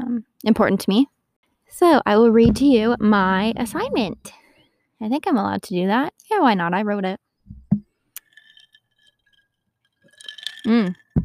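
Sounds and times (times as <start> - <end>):
speech: 0.2 - 1.1, 1.7 - 4.4, 5.0 - 7.2, 10.6 - 11.0
glass clinking: 8.2 - 11.2
person sipping a drink: 10.1 - 11.2.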